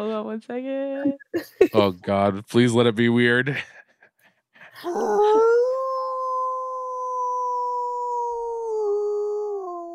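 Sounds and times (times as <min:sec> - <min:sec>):
speech: 0:00.0 - 0:03.8, 0:04.8 - 0:05.6
wolf howling: 0:04.8 - 0:09.9.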